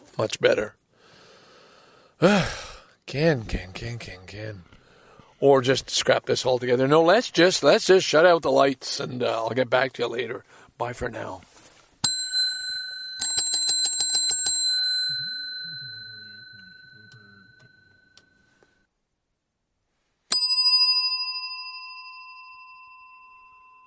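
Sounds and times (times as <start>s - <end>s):
speech: 0.2s - 0.8s, 2.2s - 4.8s, 5.4s - 11.5s
quick trill of rapid bell rings: 12.1s - 18.2s, 20.3s - 23.8s
bell strike: 14.4s - 18.2s, 20.3s - 23.8s.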